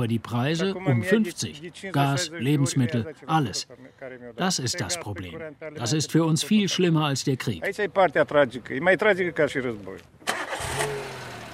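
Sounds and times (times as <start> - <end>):
speech: 0.0 - 10.9
car engine cranking and settling into idle rumble: 10.2 - 11.5.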